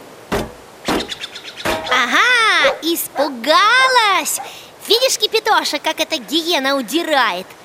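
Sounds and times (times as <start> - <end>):
branch striking a metal kettle: 0.3 - 2.0
speech: 2.8 - 7.6.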